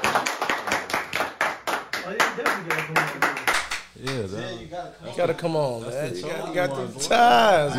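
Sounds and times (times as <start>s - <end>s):
single person clapping hands: 0.0s - 4.3s
speech: 2.4s - 3.2s, 4.0s - 7.7s.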